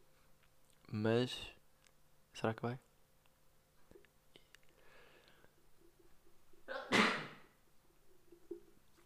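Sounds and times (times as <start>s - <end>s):
faint hum: 0.0s - 9.0s
speech: 0.9s - 1.6s, 2.4s - 2.9s
single sharp sneeze: 6.7s - 7.4s.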